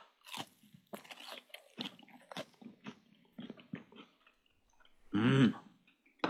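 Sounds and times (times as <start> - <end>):
crunchy bites and chewing of thick fried horse mackerel fillet with sauce and lemon: 0.0 - 4.4.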